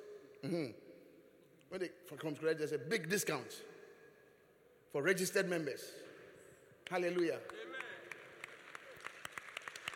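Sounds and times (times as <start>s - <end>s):
speech: 0.4s - 0.8s, 1.7s - 3.8s, 4.9s - 6.1s, 6.8s - 7.7s
audience member clapping hands: 6.8s - 9.9s.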